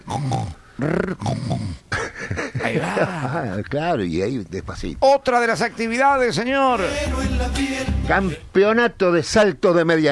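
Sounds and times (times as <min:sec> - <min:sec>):
person imitating a dog growl blended with snoring: 0:00.0 - 0:01.8
speech: 0:00.1 - 0:10.1.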